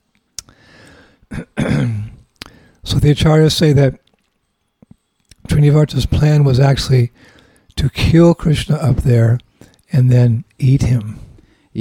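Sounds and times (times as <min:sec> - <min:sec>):
person coughing after swallowing water the wrong way: 0:01.3 - 0:02.2
speech: 0:03.1 - 0:04.0, 0:05.6 - 0:11.2.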